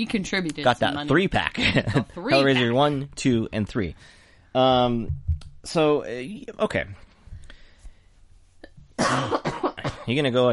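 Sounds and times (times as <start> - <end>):
speech: 0.0 - 7.0, 9.1 - 9.5, 10.1 - 10.5
loud harsh cough: 9.0 - 10.2.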